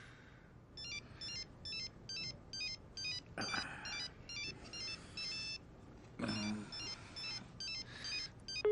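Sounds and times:
answering machine picking up: 0.8 - 3.3, 3.9 - 5.6, 6.4 - 8.7
telephone ringing with rapid electronic warble: 0.8 - 5.7, 6.3 - 8.7.

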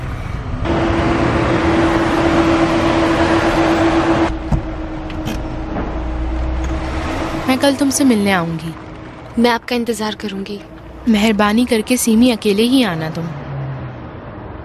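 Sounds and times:
car engine running: 0.0 - 13.4
thump as car stops: 4.4 - 6.0
speech: 7.6 - 8.8, 9.4 - 13.4.

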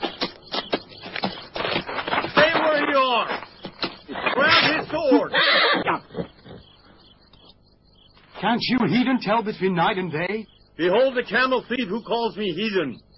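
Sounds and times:
scuffling and shuffling movement: 0.0 - 5.3
horse whinnying: 4.1 - 6.8
speech: 8.5 - 13.1.

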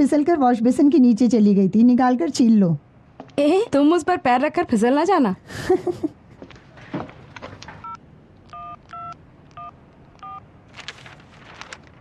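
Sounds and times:
speech: 0.0 - 6.2
telephone keypad dialing tones: 7.8 - 10.4.

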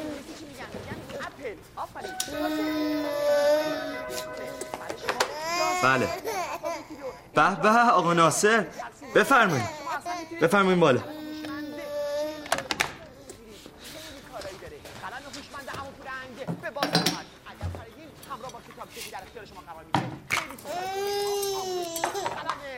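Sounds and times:
speech: 1.5 - 3.2, 5.8 - 6.3, 7.4 - 9.8, 10.4 - 11.2
infant crying: 2.1 - 7.4, 8.7 - 13.2, 20.6 - 22.5.

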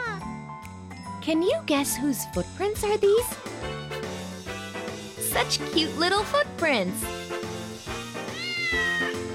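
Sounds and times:
speech: 1.2 - 3.8, 5.4 - 7.3
black and white cat meowing: 8.3 - 9.2.

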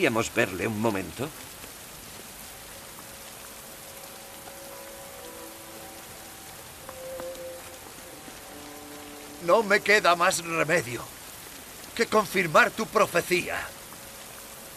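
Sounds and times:
speech: 0.0 - 1.5, 9.4 - 11.2, 12.0 - 13.8
steady rain falling: 0.0 - 14.7
faint tonal chirps: 3.8 - 10.1.

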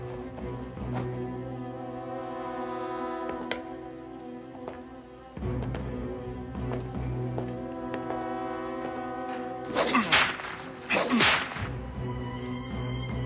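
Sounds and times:
sustained droning musical background: 0.0 - 13.2
whip lashes cracking as a person is flogged: 9.7 - 11.8.

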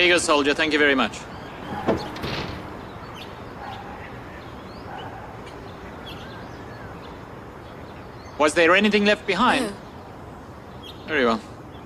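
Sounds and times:
speech: 0.0 - 2.0, 8.4 - 9.8, 11.1 - 11.5
door lock clicking shut: 1.6 - 2.7.

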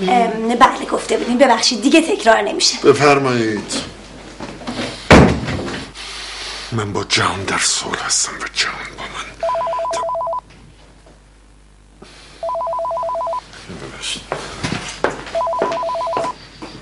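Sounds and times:
speech: 0.0 - 3.9, 6.7 - 9.4
telephone ringing: 9.4 - 10.4, 12.4 - 13.5, 15.3 - 16.4.

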